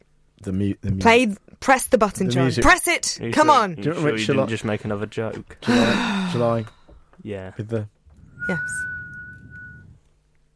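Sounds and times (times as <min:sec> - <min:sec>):
speech: 0:00.4 - 0:08.9
low rumble: 0:08.1 - 0:10.0
person whistling a single steady note: 0:08.2 - 0:10.0.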